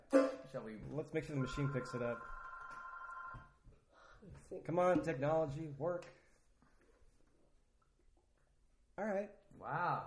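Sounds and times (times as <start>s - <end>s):
speech: 0.5s - 2.4s, 4.2s - 6.2s, 9.0s - 10.0s
telephone ringing with a steady electronic tone: 1.4s - 3.5s.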